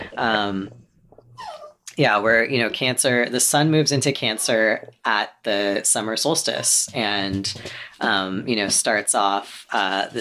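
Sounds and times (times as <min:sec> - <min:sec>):
speech: 0:00.2 - 0:00.8, 0:02.0 - 0:10.2
dog whining: 0:01.1 - 0:01.9.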